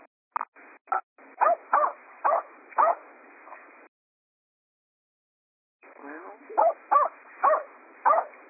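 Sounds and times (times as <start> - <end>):
dog barking and yipping on a caller's unmuted phone line: 1.4 - 3.0, 6.6 - 8.4.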